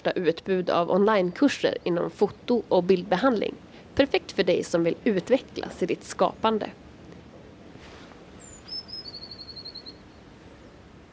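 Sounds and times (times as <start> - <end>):
speech: 0.0 - 6.8
steady low outdoor rumble: 0.0 - 11.1
blue tit singing: 8.4 - 10.8.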